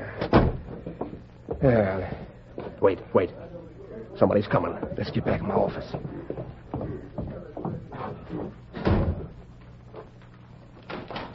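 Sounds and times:
door pushed shut: 0.2 - 0.8, 8.0 - 9.4
speech: 1.6 - 2.2, 2.8 - 3.6, 4.2 - 6.2.

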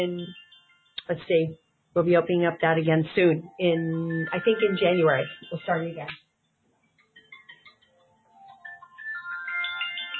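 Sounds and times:
speech: 0.0 - 0.4, 1.1 - 6.2
mobile phone ringtone playing a bright melodic electronic tune: 0.0 - 1.0, 3.6 - 6.1, 7.2 - 10.1.

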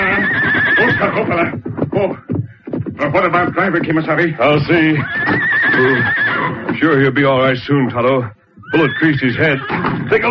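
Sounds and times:
horse neighing as a stagecoach stops: 0.0 - 1.5, 4.8 - 6.8, 8.6 - 10.2
speech: 1.0 - 2.3, 3.0 - 10.2.

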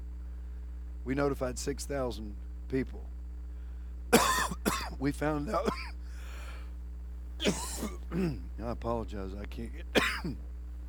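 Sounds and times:
faint steady hum: 0.0 - 10.8
speech: 1.0 - 3.2, 5.0 - 5.8, 7.4 - 10.5
harsh coughing: 4.1 - 6.3, 7.4 - 8.5, 9.9 - 10.4.

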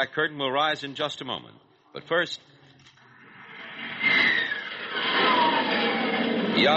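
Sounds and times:
speech: 0.0 - 2.6, 6.6 - 6.7
F-89 Scorpion jet engine roaring as the aircraft passes overhead: 3.1 - 6.7.

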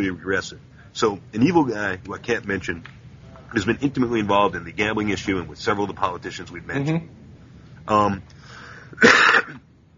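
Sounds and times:
speech: 0.0 - 7.2, 7.9 - 9.6
smoker's harsh raspy cough: 8.9 - 9.6.

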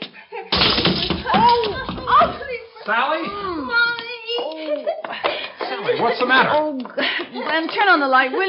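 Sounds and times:
crash and clatter of woman tripping over a child's toy and tumbling: 0.5 - 2.5
scattering impact noises: 0.5 - 2.6
speech: 2.9 - 3.9, 5.8 - 8.4
laughter: 4.3 - 8.4.

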